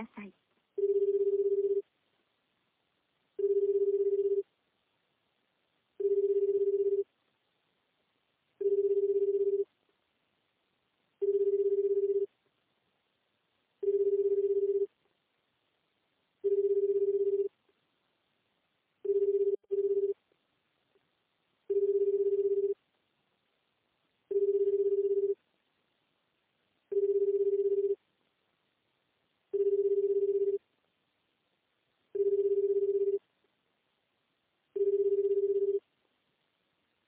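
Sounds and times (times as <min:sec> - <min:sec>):
low telephone ringback tone on an unanswered call: 0:00.8 - 0:01.8, 0:03.4 - 0:04.4, 0:06.0 - 0:07.0, 0:08.6 - 0:09.6, 0:11.2 - 0:12.3, 0:13.8 - 0:14.9, 0:16.4 - 0:17.5, 0:19.1 - 0:20.2, 0:21.7 - 0:22.8, 0:24.3 - 0:25.4, 0:26.9 - 0:28.0, 0:29.6 - 0:30.6, 0:32.2 - 0:33.2, 0:34.8 - 0:35.8.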